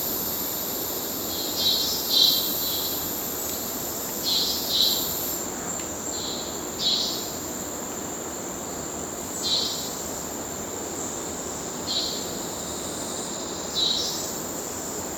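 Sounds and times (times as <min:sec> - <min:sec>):
cicadas whining in the Amazon rainforest: 0:00.0 - 0:15.1.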